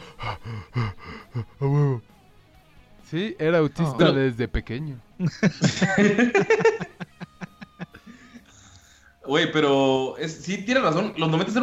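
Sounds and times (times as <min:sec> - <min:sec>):
voice imitating gasping for air after holding breath: 0:00.0 - 0:02.0
speech: 0:03.1 - 0:06.6, 0:09.3 - 0:11.6
laughter: 0:05.2 - 0:08.4.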